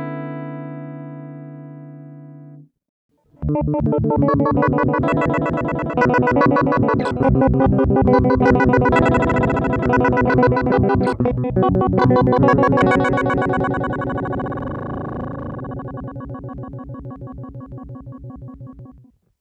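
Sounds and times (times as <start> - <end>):
octave tremolo: 3.4 - 19.1.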